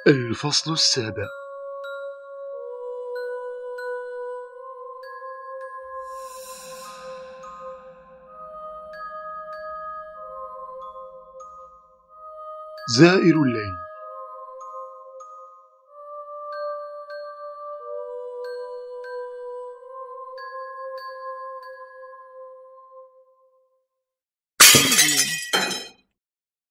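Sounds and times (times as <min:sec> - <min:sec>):
speech: 0:00.0 - 0:01.4, 0:13.0 - 0:13.8
soft tonal musical passage: 0:00.0 - 0:21.6
glass shattering with scattered tinkling fragments: 0:24.6 - 0:25.9.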